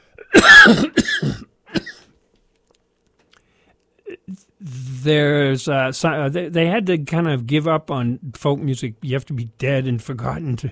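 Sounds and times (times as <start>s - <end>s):
person clearing throat: 0.0s - 2.1s, 4.0s - 4.5s
person coughing harshly: 0.0s - 2.1s, 4.0s - 4.4s
speech: 0.3s - 1.0s, 5.0s - 10.7s.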